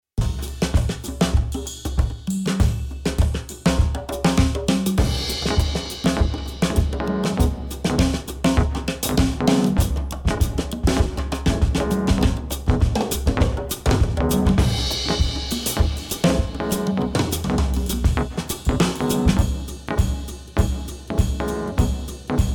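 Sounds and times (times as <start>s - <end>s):
drums with parallel distortion: 0.2s - 22.5s
processed piano: 5.0s - 22.5s.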